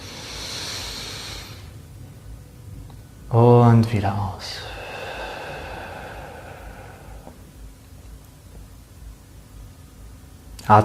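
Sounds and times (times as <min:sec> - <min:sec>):
deep breath in during a guided breathing exercise: 0:00.0 - 0:01.8, 0:04.6 - 0:07.4
speech: 0:03.3 - 0:04.7, 0:10.7 - 0:10.8.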